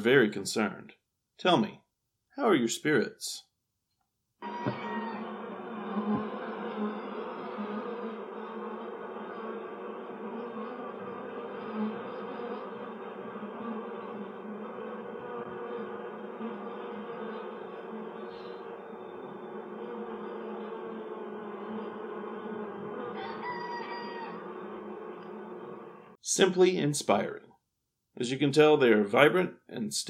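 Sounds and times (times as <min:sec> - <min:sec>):
speech: 0:00.0 - 0:01.8, 0:02.4 - 0:03.5, 0:26.3 - 0:27.4, 0:28.2 - 0:30.0
many bees buzzing: 0:04.4 - 0:26.2.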